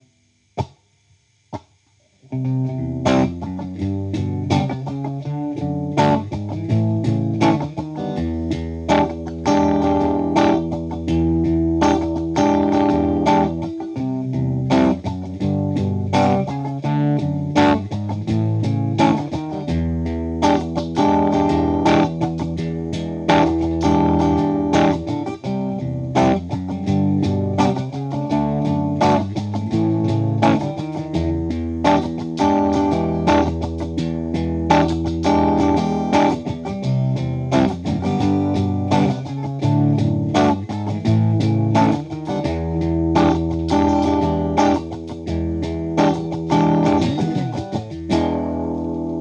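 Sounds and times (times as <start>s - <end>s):
bass: 2.3s - 49.1s.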